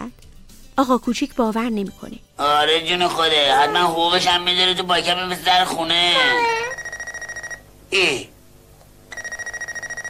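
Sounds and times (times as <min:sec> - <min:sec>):
speech: 0:00.8 - 0:06.6, 0:07.9 - 0:08.3
telephone ringing with a trilling bell: 0:06.2 - 0:07.7, 0:09.1 - 0:10.0.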